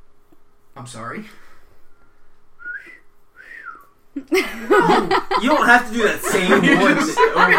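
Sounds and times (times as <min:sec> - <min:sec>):
speech: 0:00.8 - 0:01.5, 0:04.2 - 0:07.5
person whistling soft gliding notes: 0:02.6 - 0:03.9
laughter: 0:04.2 - 0:07.5.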